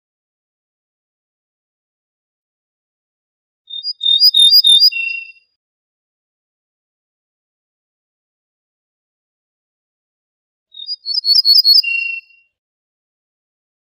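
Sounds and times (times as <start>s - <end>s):
ortolan bunting singing: 3.7s - 5.4s, 10.8s - 12.4s.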